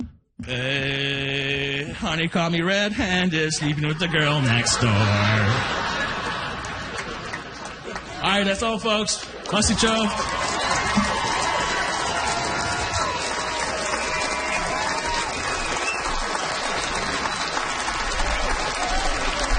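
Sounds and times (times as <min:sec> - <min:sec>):
speech: 0:00.5 - 0:06.0, 0:08.4 - 0:11.1
laughter: 0:02.9 - 0:08.6
audience applause after a comedy set: 0:04.4 - 0:19.5.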